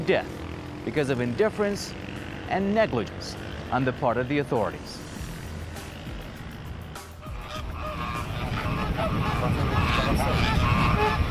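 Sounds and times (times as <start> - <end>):
speech: 0.1 - 5.1
dense flock of migratory geese honking at a wetland in Kashmir in winter: 7.2 - 11.2.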